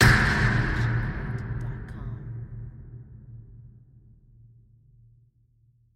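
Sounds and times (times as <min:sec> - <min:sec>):
scream hit: 0:00.0 - 0:03.8
designed medium sub boom: 0:00.0 - 0:05.4.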